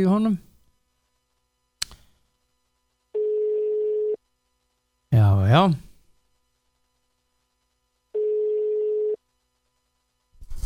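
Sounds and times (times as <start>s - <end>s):
speech: 0.0s - 0.5s, 5.5s - 5.9s
telephone ringing: 3.2s - 4.2s, 8.2s - 9.2s.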